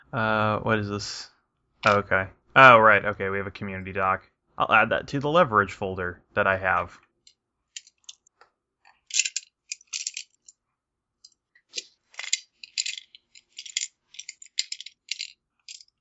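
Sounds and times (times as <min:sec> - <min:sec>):
speech: 0:00.1 - 0:07.0
handfuls of dice rattling and clattering: 0:07.8 - 0:08.2, 0:08.9 - 0:10.6, 0:11.7 - 0:15.9.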